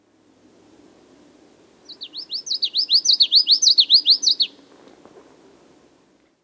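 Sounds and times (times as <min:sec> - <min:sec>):
common yellowthroat calling: 0:01.8 - 0:04.6.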